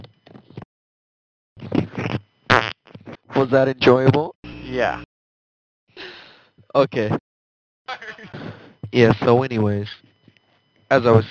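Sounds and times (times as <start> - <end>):
fart: 1.8 - 2.9
speech: 3.4 - 5.1, 6.7 - 7.2, 7.9 - 10.1, 10.9 - 11.2.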